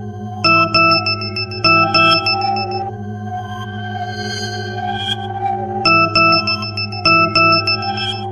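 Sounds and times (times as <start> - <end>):
3D space-themed Nokia SMS ringtone: 0.5 - 2.9, 5.9 - 8.3.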